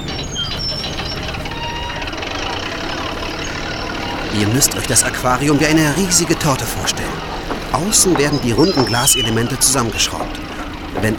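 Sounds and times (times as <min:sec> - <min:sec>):
indistinct voices: 0:00.0 - 0:11.1
large crane engine rumbling lifting plastic panels from a truck at a work site by a bay: 0:00.0 - 0:11.1
laughter: 0:00.0 - 0:11.1
speech: 0:04.4 - 0:11.1.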